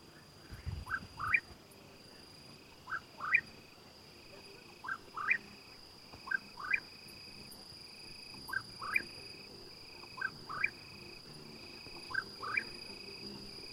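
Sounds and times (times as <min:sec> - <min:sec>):
crickets chirping: 0:00.0 - 0:13.7
cucurrí bird singing at night: 0:00.9 - 0:01.4, 0:08.5 - 0:09.1, 0:10.2 - 0:10.8, 0:12.1 - 0:12.8.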